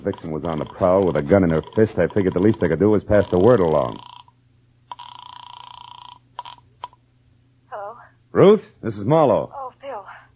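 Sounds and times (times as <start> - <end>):
speech: 0.0 - 4.1, 8.4 - 9.6
old-fashioned telephone bell ringing: 3.9 - 4.3, 4.9 - 6.6.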